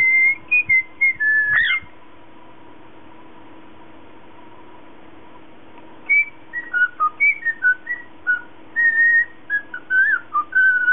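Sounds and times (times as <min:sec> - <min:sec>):
lutino cockatiel piping short bright whistles: 0:00.0 - 0:01.9, 0:06.1 - 0:10.9
soft low hum: 0:00.0 - 0:10.9.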